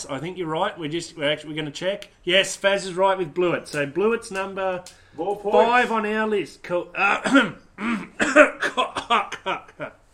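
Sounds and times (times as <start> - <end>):
speech: 0.0 - 10.1
person clearing throat: 7.1 - 10.1
person coughing: 7.2 - 10.1.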